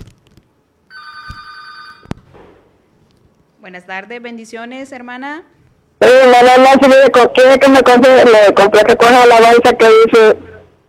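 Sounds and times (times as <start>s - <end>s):
faint noise: 0.0s - 10.8s
electronic telephone ring as a call-in caller is connected: 0.9s - 2.1s
speech: 3.6s - 10.5s.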